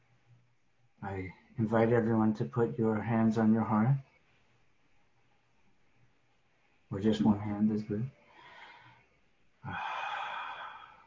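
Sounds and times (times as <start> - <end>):
speech: 1.1 - 4.1, 6.9 - 8.2, 9.6 - 9.9
person breathing deeply during a guided calming exercise: 8.2 - 11.0.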